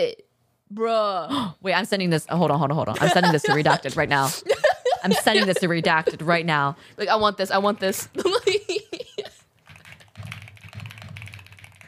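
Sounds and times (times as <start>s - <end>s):
speech: 0.0s - 8.5s
low hum: 0.0s - 11.8s
laughter: 3.0s - 6.4s, 8.2s - 9.4s
intense typing on computer keyboard: 9.6s - 11.8s.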